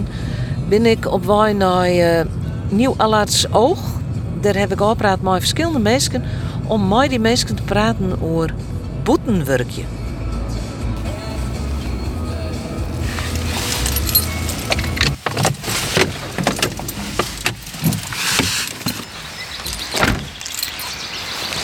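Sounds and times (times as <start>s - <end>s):
car engine rumbling low: 0.0s - 21.6s
speech: 0.7s - 10.0s
keys jangling: 12.9s - 21.1s
clicks and thumps: 13.0s - 20.8s.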